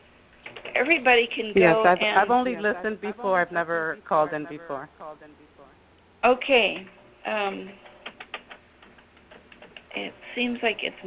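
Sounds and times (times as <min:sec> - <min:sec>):
speech: 0:00.8 - 0:07.9, 0:10.0 - 0:11.0
typing on a computer keyboard: 0:07.9 - 0:09.9.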